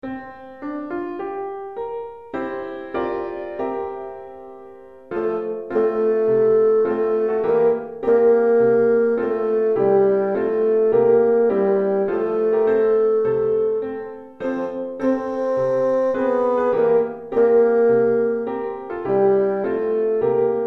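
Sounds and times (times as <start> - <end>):
piano: 0.0 - 20.6
bassoon: 5.1 - 20.6.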